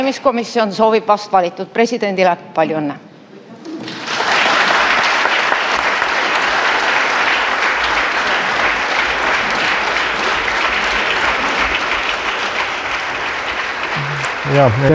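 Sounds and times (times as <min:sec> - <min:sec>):
speech: 0:00.0 - 0:03.1, 0:14.5 - 0:14.9
parliament members applauding newly elected president: 0:03.8 - 0:14.9.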